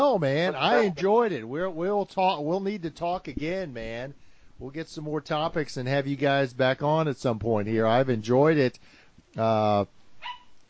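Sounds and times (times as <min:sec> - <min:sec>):
speech: 0:00.0 - 0:10.4
small dog yapping: 0:10.2 - 0:10.6.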